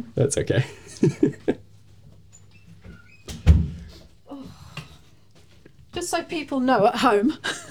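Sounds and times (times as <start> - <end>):
speech: 0.0 - 1.6, 6.0 - 7.7
laughter: 0.6 - 1.6
door knocks from a dog banging it open: 3.3 - 4.0.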